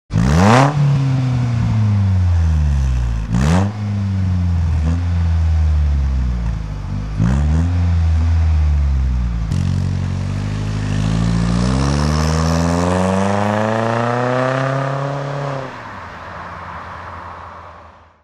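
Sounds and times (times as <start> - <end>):
vehicle driving off: 0.1 - 16.1
vehicle idling: 0.8 - 11.8.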